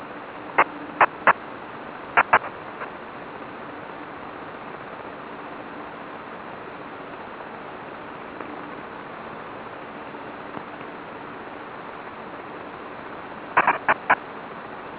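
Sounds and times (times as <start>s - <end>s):
HF data modem signal in frequency hopping mode: 0.0s - 1.4s, 2.1s - 2.9s, 13.5s - 14.3s.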